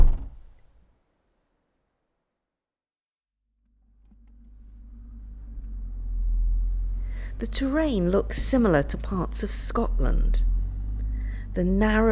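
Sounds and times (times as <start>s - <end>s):
car rear door thud: 0.0s - 0.5s
low vehicle rumble: 0.0s - 0.5s, 3.9s - 12.1s
passengers climbing into a car: 0.0s - 0.5s, 7.1s - 12.1s
speech: 7.3s - 10.6s, 11.6s - 12.1s.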